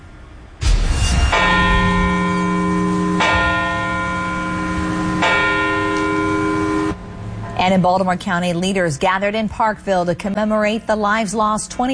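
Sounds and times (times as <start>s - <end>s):
large memorial bell tolling: 0.6s - 8.8s
speech: 7.7s - 11.9s.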